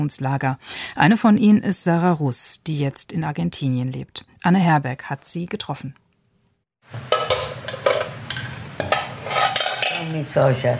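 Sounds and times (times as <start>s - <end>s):
speech: 0.0s - 6.0s, 6.9s - 7.1s, 10.1s - 10.7s
dented metal pots clanking and knocking as handled and turned: 6.9s - 10.7s.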